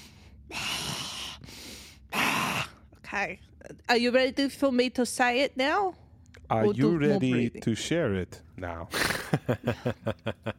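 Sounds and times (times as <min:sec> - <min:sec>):
slow deep breathing in and out: 0:00.0 - 0:02.8
speech: 0:03.1 - 0:10.5.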